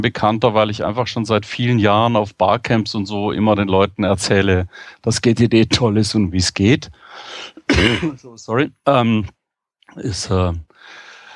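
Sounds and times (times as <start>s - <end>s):
speech: 0.0s - 11.0s
pollen-induced cough: 7.6s - 8.3s.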